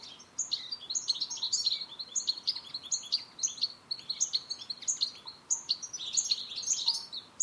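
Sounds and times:
European goldfinch Carduelis carduelis chirping and twittering: 0.0s - 7.4s.

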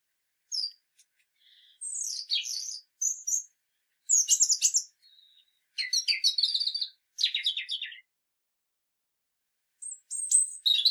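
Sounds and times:
European robin singing: 0.5s - 0.8s, 1.4s - 3.5s, 4.1s - 8.1s, 9.8s - 10.8s.

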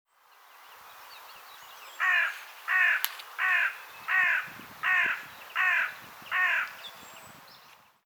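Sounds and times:
carrion crow Corvus corone cawing: 2.0s - 6.8s.

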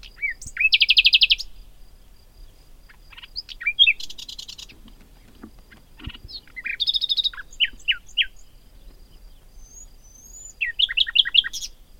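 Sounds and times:
common nightingale Luscinia megarhynchos singing: 0.0s - 11.9s.

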